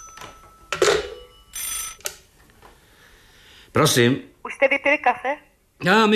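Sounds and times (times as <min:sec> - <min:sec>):
old-style telephone bell ringing: 0:00.0 - 0:02.0
speech: 0:03.8 - 0:06.1.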